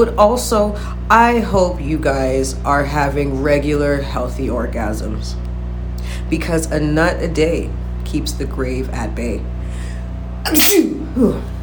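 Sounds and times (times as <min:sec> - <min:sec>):
speech: 0:00.0 - 0:05.4, 0:06.2 - 0:09.6, 0:10.4 - 0:11.6
person sneezing: 0:10.5 - 0:11.6.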